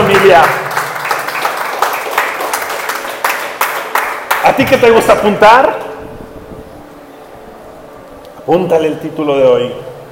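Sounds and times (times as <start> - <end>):
crowd applauding: 0.0 - 5.3
speech: 0.2 - 0.6, 4.5 - 5.9, 8.5 - 9.9.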